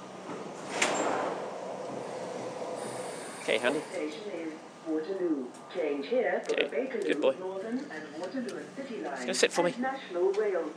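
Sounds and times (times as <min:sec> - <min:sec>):
platform edge doors sliding open: 0:00.0 - 0:04.1
steady rumble of the station: 0:00.0 - 0:10.7
speech: 0:03.5 - 0:10.7.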